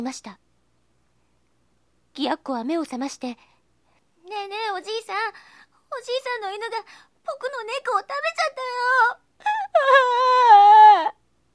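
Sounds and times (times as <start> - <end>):
speech: 0.0 - 0.4, 2.2 - 3.5, 4.2 - 11.2
child wailing: 8.8 - 11.2.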